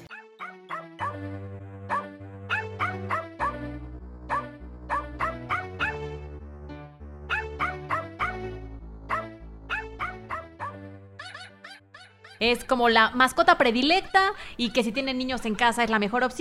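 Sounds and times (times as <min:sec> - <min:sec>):
dogs barking and yipping: 0:00.0 - 0:01.2, 0:01.9 - 0:03.6, 0:04.3 - 0:06.0, 0:07.3 - 0:08.1, 0:09.1 - 0:12.4
speech: 0:12.4 - 0:16.4.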